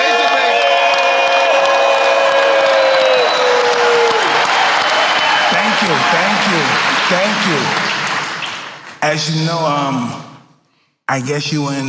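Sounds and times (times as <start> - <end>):
audience cheering at a live event: 0.0 - 8.3
audience applauding at a live event: 0.0 - 9.1
speech: 6.5 - 7.8, 9.0 - 10.3, 11.1 - 11.8.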